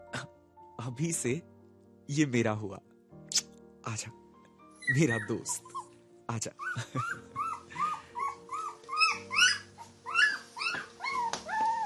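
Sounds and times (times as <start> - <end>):
speech: 0.8 - 1.5, 2.1 - 2.9, 3.8 - 4.2, 4.9 - 7.5
puppy whimpering and yipping: 4.8 - 6.0, 6.6 - 11.8.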